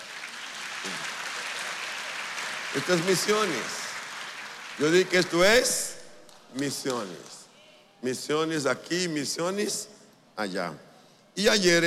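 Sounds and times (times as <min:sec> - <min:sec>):
applause from a church gathering: 0:00.0 - 0:07.5
speech: 0:02.8 - 0:03.8, 0:04.8 - 0:05.9, 0:06.5 - 0:07.4, 0:08.0 - 0:11.8.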